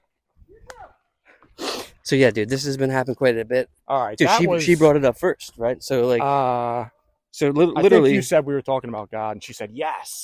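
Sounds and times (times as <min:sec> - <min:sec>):
speech: 0:00.5 - 0:10.2
person sneezing: 0:01.6 - 0:01.9.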